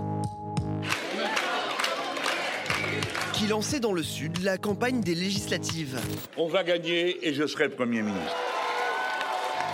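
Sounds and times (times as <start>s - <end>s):
large crowd roaring and cheering at a political rally in Marseille: 0.8s - 3.6s, 8.0s - 9.7s
speech: 3.4s - 8.5s.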